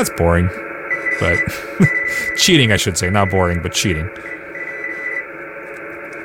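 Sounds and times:
speech: 0:00.0 - 0:04.4
hissing HF radio static: 0:00.0 - 0:06.2
faint Morse code tone: 0:00.9 - 0:03.6, 0:04.2 - 0:05.2.

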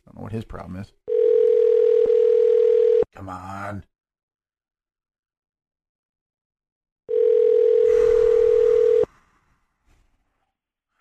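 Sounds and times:
speech: 0:00.3 - 0:01.0, 0:03.2 - 0:03.9
electronic telephone ringback tone while calling a phone: 0:01.1 - 0:03.0, 0:07.1 - 0:09.1.

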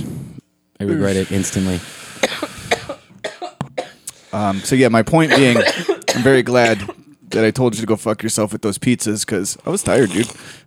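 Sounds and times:
speech: 0:00.8 - 0:02.4, 0:04.3 - 0:10.6
person coughing harshly after a vape hit: 0:02.2 - 0:07.6.

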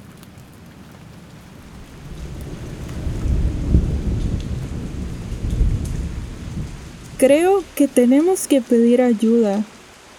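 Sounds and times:
heavy rain pouring at a lagoon lookout point: 0:00.0 - 0:10.1
deep rolling thunder in an electrical storm at a lagoon lookout point: 0:01.4 - 0:08.0
speech: 0:07.2 - 0:09.7.

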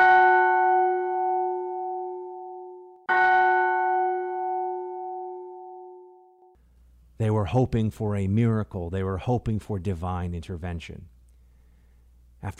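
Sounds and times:
large church bell tolling: 0:00.0 - 0:06.6
speech: 0:07.2 - 0:11.2.

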